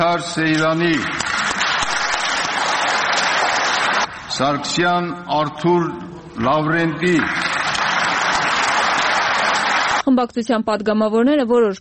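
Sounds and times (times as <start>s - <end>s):
speech: 0.2s - 1.3s, 4.4s - 7.4s, 10.1s - 11.7s
members of parliament applauding in a parliamentary session: 0.7s - 4.3s, 6.8s - 10.0s.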